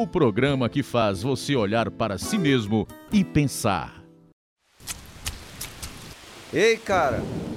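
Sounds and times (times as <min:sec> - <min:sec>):
speech: 0:00.0 - 0:04.0, 0:06.5 - 0:07.5
rain splashes: 0:04.6 - 0:07.5
steady rain pouring down: 0:05.2 - 0:07.5.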